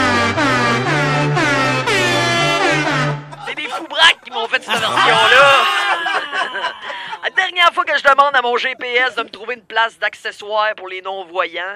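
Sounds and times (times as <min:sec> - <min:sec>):
buzzy kazoo-like novelty car horn playing an anthem: 0:00.0 - 0:03.4
laughter: 0:03.2 - 0:07.6
speech: 0:08.0 - 0:11.7.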